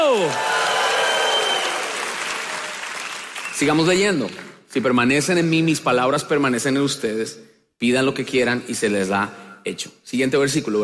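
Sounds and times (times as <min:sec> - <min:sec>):
large crowd applauding: 0:00.0 - 0:04.5
speech: 0:00.2 - 0:00.5, 0:03.6 - 0:10.8.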